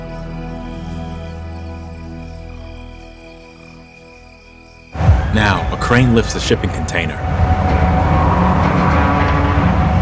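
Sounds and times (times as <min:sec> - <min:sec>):
trucks driving near a harbour's edge: 0:05.0 - 0:09.9
speech: 0:05.4 - 0:07.5.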